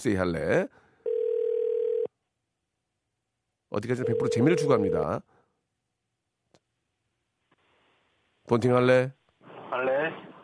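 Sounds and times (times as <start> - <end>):
speech: 0.0 - 0.8, 3.7 - 5.3, 8.5 - 10.3
telephone dial tone: 1.0 - 2.1.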